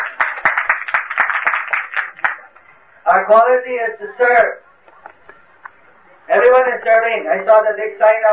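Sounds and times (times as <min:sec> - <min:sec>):
audience applause: 0:00.0 - 0:02.6
speech: 0:03.2 - 0:04.6, 0:06.3 - 0:08.3.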